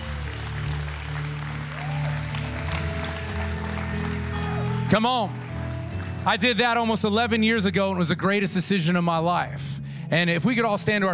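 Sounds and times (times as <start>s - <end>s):
large audience applauding: 0.0s - 7.5s
sustained low musical tones: 0.0s - 10.8s
speech: 4.9s - 5.4s, 6.2s - 11.1s.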